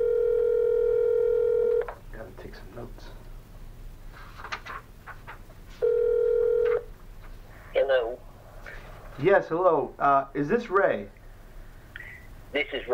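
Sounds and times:
telephone ringback tones over a speakerphone: 0:00.0 - 0:01.9, 0:05.8 - 0:06.9
speech: 0:09.2 - 0:11.2, 0:12.5 - 0:12.9.

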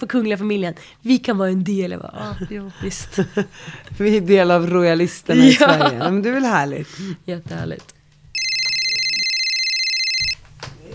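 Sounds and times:
speech: 0:00.0 - 0:08.0
mobile phone ringing with an incoming call: 0:08.4 - 0:10.4.

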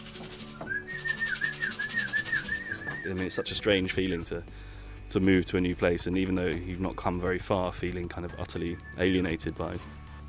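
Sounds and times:
soft steady musical background: 0:00.0 - 0:10.2
person whistling a short wavering tune: 0:00.5 - 0:03.4, 0:08.4 - 0:09.6
speech: 0:03.0 - 0:10.0.

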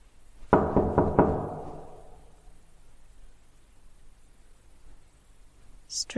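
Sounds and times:
firm knocking on a door: 0:00.5 - 0:02.4
speech: 0:06.0 - 0:06.1.

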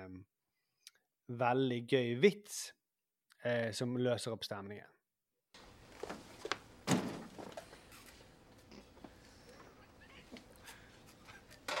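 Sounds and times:
speech: 0:01.3 - 0:02.8, 0:03.4 - 0:05.0
door slamming shut: 0:06.8 - 0:07.4.

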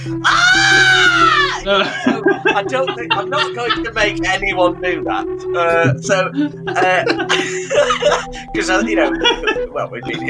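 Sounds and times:
speech: 0:00.0 - 0:00.6, 0:01.6 - 0:10.2
person screaming in pain: 0:00.2 - 0:01.8
laughter: 0:01.7 - 0:04.8, 0:05.7 - 0:10.2.

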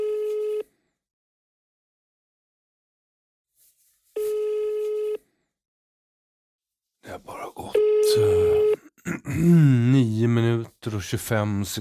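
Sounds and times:
telephone ringing tone: 0:00.0 - 0:00.7, 0:04.2 - 0:05.2, 0:07.7 - 0:08.9
speech: 0:09.4 - 0:09.7, 0:10.8 - 0:11.7.

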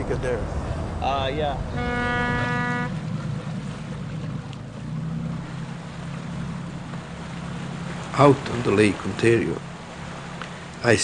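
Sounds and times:
boat engine rumbling leaving the dock: 0:00.0 - 0:11.0
water noise: 0:00.0 - 0:11.0
wind: 0:00.0 - 0:11.0
speech: 0:00.1 - 0:02.6, 0:08.2 - 0:09.7, 0:10.8 - 0:11.0
boat horn blast: 0:01.5 - 0:04.4.

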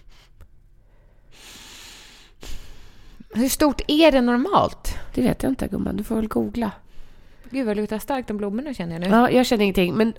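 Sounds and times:
breathing through the nose: 0:00.0 - 0:03.2
speech: 0:03.4 - 0:06.8, 0:07.5 - 0:10.1.

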